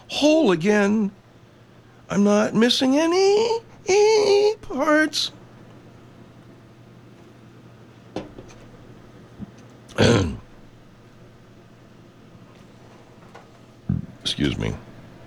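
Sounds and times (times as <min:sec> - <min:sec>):
speech: 0:00.2 - 0:01.2, 0:02.1 - 0:05.4, 0:10.0 - 0:10.4, 0:14.4 - 0:14.9
short guttural grunting bursts: 0:09.9 - 0:10.4
loud raspy belch: 0:09.9 - 0:10.5.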